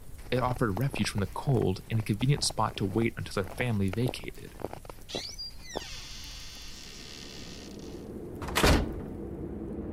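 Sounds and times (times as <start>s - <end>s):
speech: 0.3s - 5.3s
wooden door creaking open on squealing hinges: 5.1s - 8.8s
wooden door swinging shut with a solid thud: 8.4s - 9.2s.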